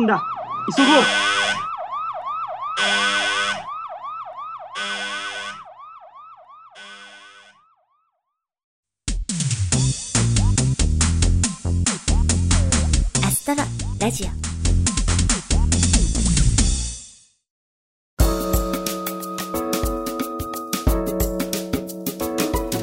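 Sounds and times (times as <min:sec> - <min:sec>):
speech: 0:00.0 - 0:01.4, 0:02.8 - 0:03.3, 0:14.0 - 0:14.5
ominous alarm siren wailing: 0:00.0 - 0:08.4
music: 0:09.1 - 0:17.4, 0:18.2 - 0:22.8.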